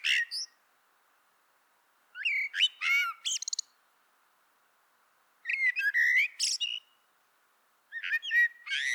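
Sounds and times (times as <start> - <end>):
common blackbird Turdus merula song: 2.2 - 3.7, 5.4 - 7.0, 7.9 - 8.9.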